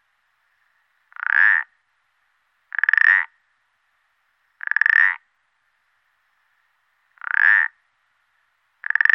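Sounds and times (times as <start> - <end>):
common parsley frog croaking with pulsed creaky croaks: 1.1 - 1.8, 2.7 - 3.4, 4.6 - 5.3, 7.2 - 7.8, 8.8 - 9.1.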